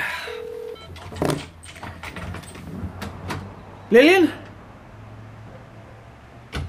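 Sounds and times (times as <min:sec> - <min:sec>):
brief steady electronic telephone tone: 0:00.2 - 0:01.1
speech: 0:03.9 - 0:04.4.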